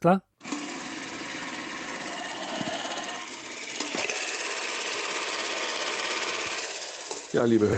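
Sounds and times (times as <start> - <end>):
spring-wound clockwork motor of an old 16mm film camera whirring: 0.4 - 7.7.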